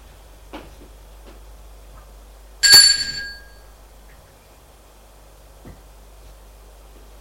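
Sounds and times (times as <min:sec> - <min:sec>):
doorbell ringing on an upper floor: 0:02.6 - 0:03.6.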